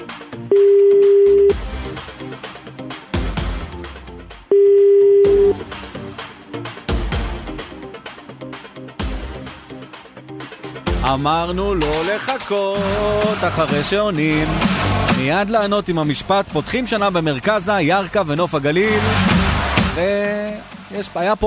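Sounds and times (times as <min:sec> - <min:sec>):
dense rhythmic sound: 0:00.0 - 0:21.4
speech: 0:00.5 - 0:00.8, 0:11.1 - 0:19.3, 0:20.0 - 0:21.4
telephone line ringing tones as a call is placed: 0:00.5 - 0:01.6, 0:04.5 - 0:05.6.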